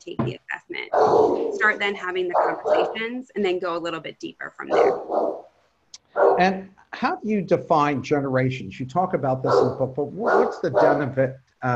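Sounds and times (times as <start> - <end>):
speech: 0.0 - 5.3, 6.2 - 11.7
English bulldog barking: 0.9 - 1.6, 4.7 - 5.4, 6.1 - 6.6, 9.4 - 11.1.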